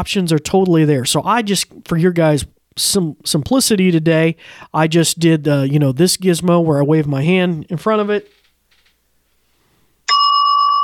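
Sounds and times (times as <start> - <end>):
speech: 0.0 - 8.4
smart speaker bell chime as a driveway motion alert: 10.1 - 10.8.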